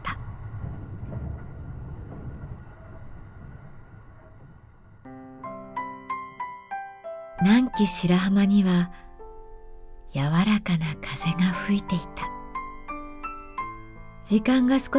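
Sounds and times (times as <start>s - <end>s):
electric train rattling along the tracks: 0.0s - 5.1s
speech: 7.4s - 9.0s, 10.1s - 12.3s, 14.3s - 14.9s.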